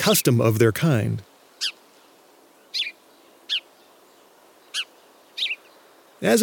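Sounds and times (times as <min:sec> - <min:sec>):
speech: 0:00.0 - 0:01.3, 0:06.2 - 0:06.4
house sparrow chirping: 0:01.6 - 0:01.8, 0:02.7 - 0:05.9.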